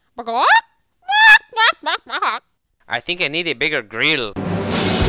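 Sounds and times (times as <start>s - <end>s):
speech: 0.2s - 0.6s, 2.9s - 4.9s
chicken squawking: 0.4s - 1.8s.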